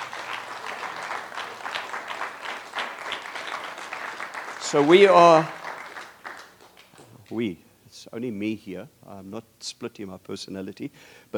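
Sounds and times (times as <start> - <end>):
audience applauding: 0.0 - 7.3
speech: 4.7 - 5.6, 7.3 - 11.3.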